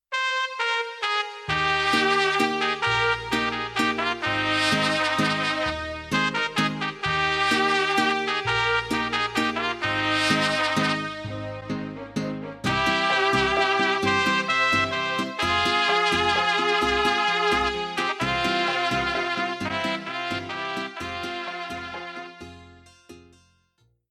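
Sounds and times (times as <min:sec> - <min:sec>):
slow mariachi music rhythms: 0:00.1 - 0:23.7.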